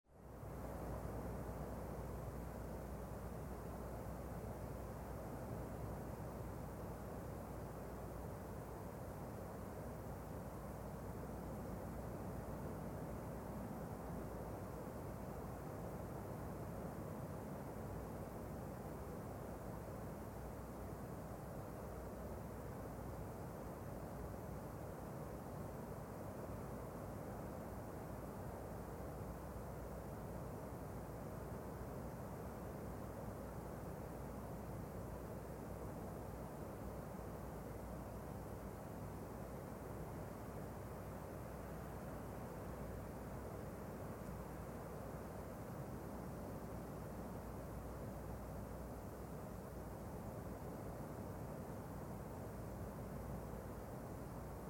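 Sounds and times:
light wind in a forest or park: 0:00.1 - 0:54.6.

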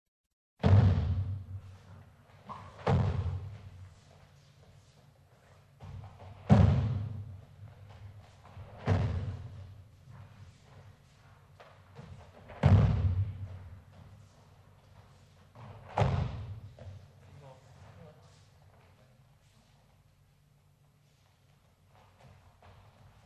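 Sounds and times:
athletes falling in a sports hall: 0:02.4 - 0:03.7, 0:05.8 - 0:07.1, 0:08.5 - 0:09.6, 0:11.6 - 0:13.5, 0:15.6 - 0:16.6.

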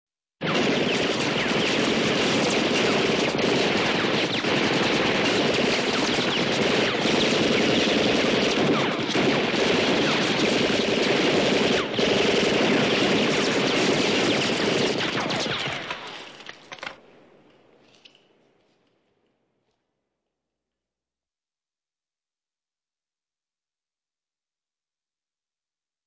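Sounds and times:
bullet ricochets: 0:00.4 - 0:16.4
automatic rifle gunfire: 0:00.4 - 0:17.1.

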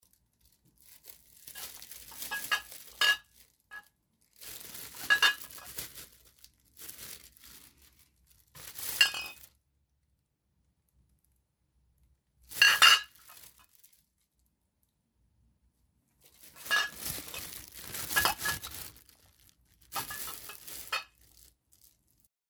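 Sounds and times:
plastic bag in motion: 0:00.0 - 0:09.5, 0:12.5 - 0:14.1, 0:16.2 - 0:22.3.

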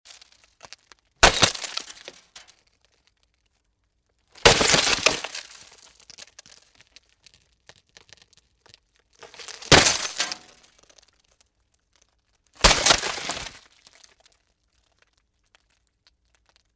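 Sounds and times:
box with glass inserts being smashed: 0:01.2 - 0:02.5, 0:04.4 - 0:05.7, 0:09.2 - 0:10.6, 0:12.6 - 0:13.7.

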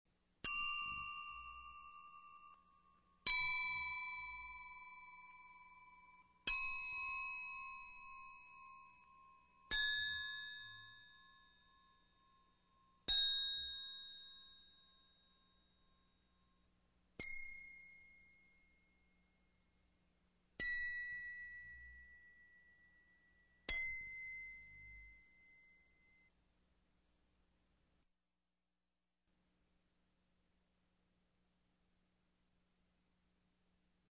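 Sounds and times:
single small bells in different keys: 0:00.4 - 0:16.0, 0:20.6 - 0:26.3.

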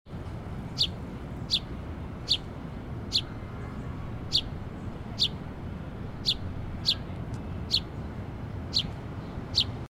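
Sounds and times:
city background noise: 0:00.1 - 0:09.9
sparrow: 0:00.7 - 0:02.5, 0:03.1 - 0:05.4, 0:06.2 - 0:08.0, 0:08.7 - 0:09.8.

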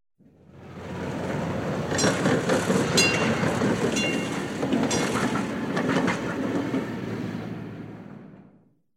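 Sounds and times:
steam locomotive passing: 0:00.2 - 0:08.6
bell: 0:03.0 - 0:05.2.

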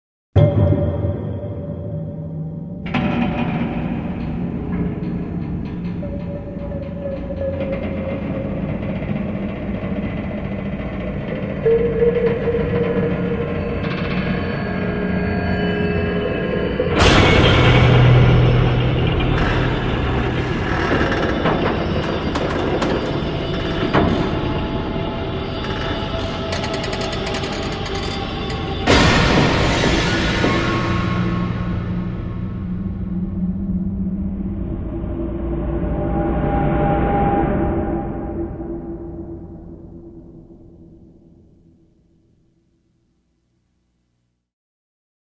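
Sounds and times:
scary sounds: 0:00.4 - 0:40.7.

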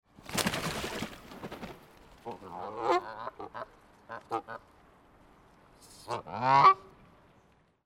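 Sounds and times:
scared goose flapping wings: 0:00.1 - 0:02.8
scared goose jumping out of water: 0:00.2 - 0:01.3.

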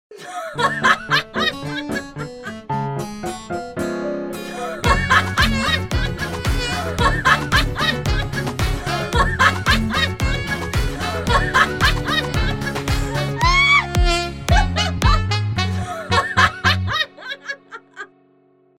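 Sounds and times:
woman laughing: 0:00.1 - 0:02.7, 0:04.8 - 0:13.9, 0:14.5 - 0:15.2, 0:15.8 - 0:18.1
music: 0:00.2 - 0:18.7.

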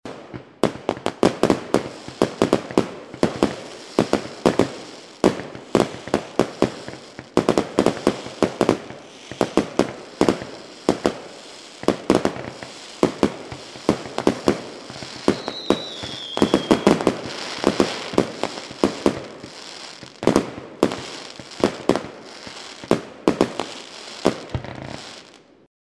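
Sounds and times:
fireworks popping and burning in a scattered crackle: 0:00.0 - 0:25.6.

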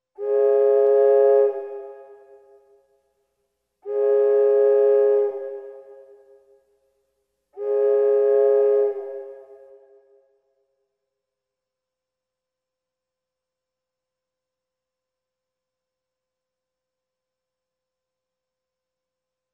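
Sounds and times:
ship horn: 0:00.2 - 0:02.5, 0:03.8 - 0:06.4, 0:07.6 - 0:10.0.

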